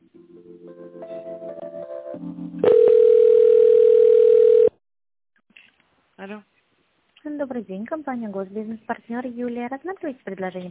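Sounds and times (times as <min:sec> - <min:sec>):
telephone tones while a call is transferred: 0:02.6 - 0:04.8
speech: 0:07.4 - 0:10.6.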